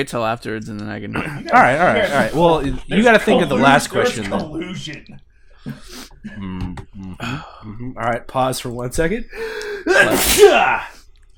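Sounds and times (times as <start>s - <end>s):
speech: 0.0s - 11.0s
short intake of breath: 9.3s - 9.9s
loud sneeze: 9.9s - 11.0s.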